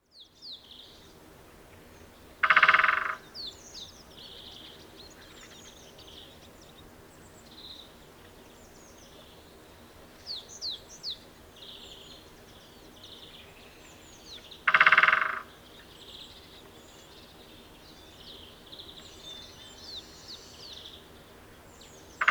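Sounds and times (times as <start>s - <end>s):
great spotted woodpecker drumming: 2.4s - 3.2s, 14.7s - 15.5s.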